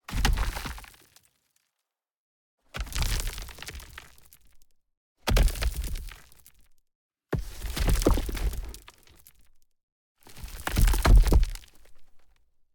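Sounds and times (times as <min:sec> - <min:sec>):
large stones and soil debris impacting from 1 meter: 0:00.1 - 0:01.1, 0:02.8 - 0:04.7, 0:05.3 - 0:06.7, 0:07.4 - 0:09.6, 0:10.3 - 0:12.3.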